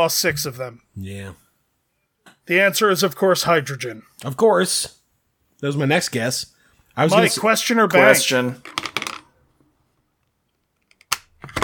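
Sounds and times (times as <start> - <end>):
speech: 0.0 - 1.4, 2.4 - 5.0, 5.6 - 9.0
die dropped on the floor: 8.6 - 9.2.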